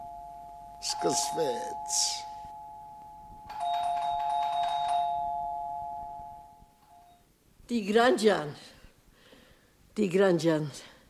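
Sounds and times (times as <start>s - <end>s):
electronic doorbell chime at a home: 0.0s - 7.2s
speech: 0.9s - 2.3s, 7.7s - 8.7s, 10.0s - 10.9s.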